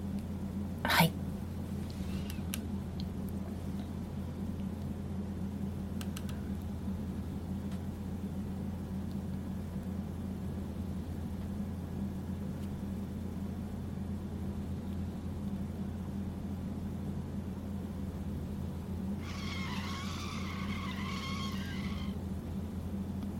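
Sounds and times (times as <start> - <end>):
car engine rumble: 0.0 - 23.3
car brakes screeching: 19.2 - 22.2
car tires skidding: 19.2 - 22.2.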